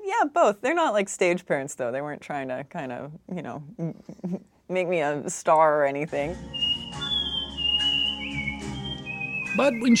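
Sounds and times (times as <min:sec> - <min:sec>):
speech: 0:00.2 - 0:07.0, 0:09.6 - 0:09.9
person whistling a tune: 0:06.5 - 0:09.9.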